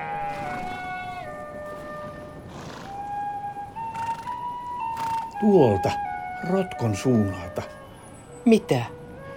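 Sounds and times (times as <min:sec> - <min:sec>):
several sheep bleating: 0:00.2 - 0:05.6
speech: 0:05.4 - 0:07.8, 0:08.4 - 0:09.0.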